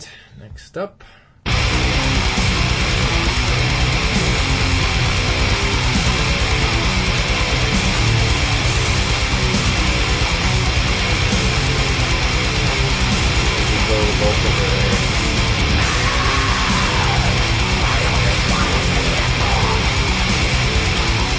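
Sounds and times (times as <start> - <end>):
speech: 0.4 - 1.2
heavy metal distorted guitars: 1.4 - 21.3
heavy metal drums pounding: 1.5 - 21.3
harsh screamed metal vocal: 15.8 - 19.9.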